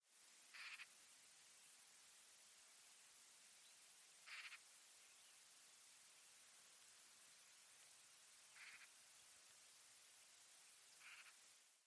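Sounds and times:
bird giving short calls: 0.5s - 0.9s, 4.3s - 4.6s, 11.0s - 11.4s.

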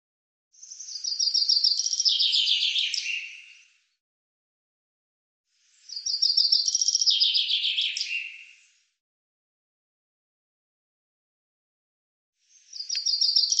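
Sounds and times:
Common chaffinch singing: 0.6s - 3.7s, 5.8s - 8.6s, 12.6s - 13.5s.

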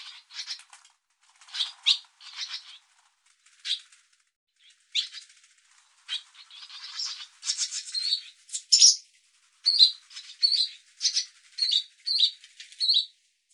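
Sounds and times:
Barn swallow chatter of scratchy chirps: 0.0s - 0.6s, 1.5s - 2.8s, 4.6s - 13.1s.

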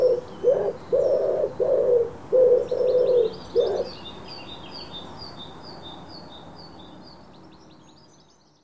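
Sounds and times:
bird giving low hollow hooting notes: 0.0s - 4.0s
high twittering from other birds: 0.0s - 8.6s.

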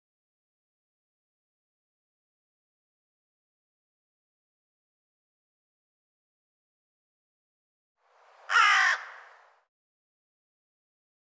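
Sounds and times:
harsh raspy bird caw: 8.5s - 9.5s.

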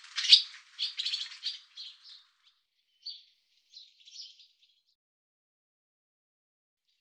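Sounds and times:
barn swallow twittering calls: 0.0s - 4.8s.

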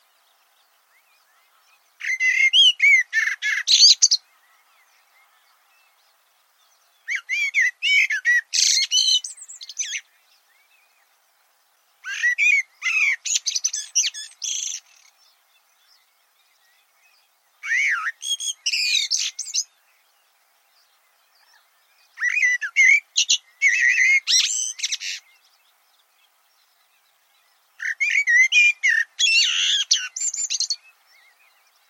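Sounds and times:
bird singing: 0.0s - 31.8s.

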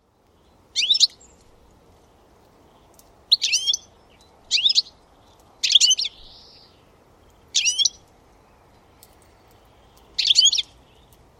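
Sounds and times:
background hiss: 0.0s - 11.3s
bird twittering: 0.8s - 1.3s, 3.3s - 4.9s, 5.6s - 6.8s, 7.5s - 8.0s, 9.8s - 11.1s.

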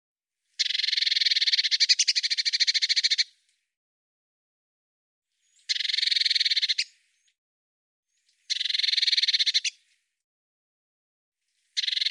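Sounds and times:
Eurasian blue tit scolding churr: 0.6s - 3.3s, 5.7s - 6.9s, 8.5s - 9.8s, 11.8s - 12.1s.

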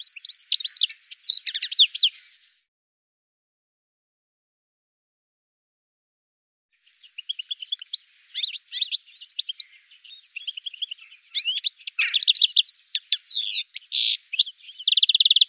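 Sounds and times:
bird calls with rapid high chirps and trills: 0.0s - 2.5s, 6.8s - 15.4s.

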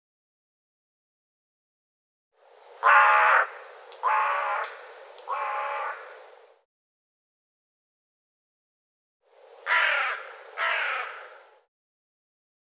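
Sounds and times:
bird giving harsh cawing calls: 2.8s - 6.3s, 9.6s - 11.7s.

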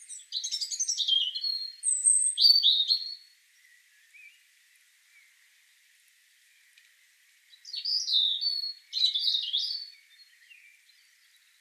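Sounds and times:
European robin Erithacus rubecula song in rich warbling phrases: 0.0s - 4.4s, 7.5s - 11.5s.

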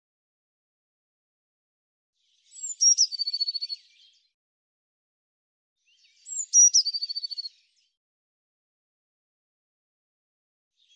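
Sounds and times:
Eurasian blue tit calling: 2.6s - 3.7s, 6.3s - 7.4s.

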